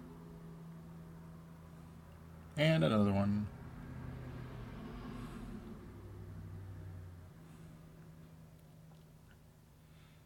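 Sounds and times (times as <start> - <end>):
speech: 2.6 - 3.6
car driving by outside: 3.5 - 8.2.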